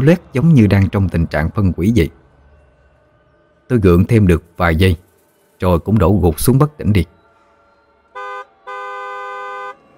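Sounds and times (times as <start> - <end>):
speech: 0.0 - 2.2, 3.7 - 5.0, 5.6 - 7.2
loud truck horn blaring: 8.1 - 9.9.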